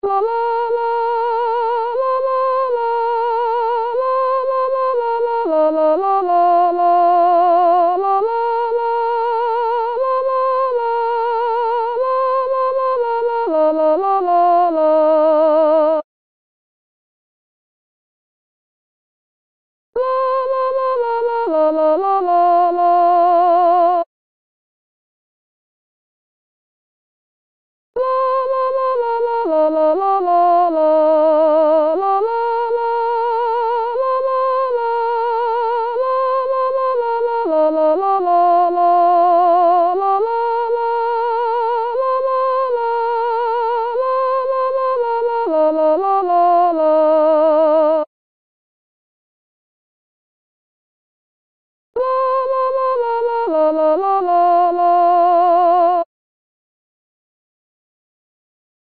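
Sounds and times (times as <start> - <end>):
soprano singing: 0.0 - 16.1, 20.0 - 24.1, 28.0 - 48.1, 52.0 - 56.1.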